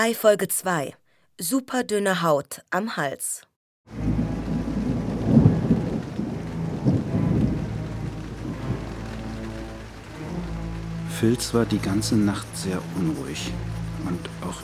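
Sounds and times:
speech: 0:00.0 - 0:04.1, 0:11.2 - 0:14.6
deep rolling thunder: 0:03.9 - 0:14.6
steady rain: 0:03.9 - 0:14.6.

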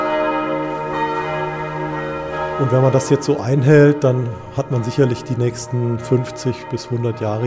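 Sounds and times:
full peal of several church tower bells ringing: 0:00.0 - 0:07.4
speech: 0:02.6 - 0:07.4.

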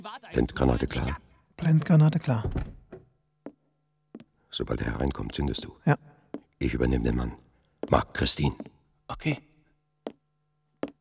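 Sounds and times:
speech: 0:00.3 - 0:02.7, 0:04.6 - 0:09.5
door being opened: 0:02.3 - 0:03.1
dull knocks and clunks: 0:02.4 - 0:03.1.

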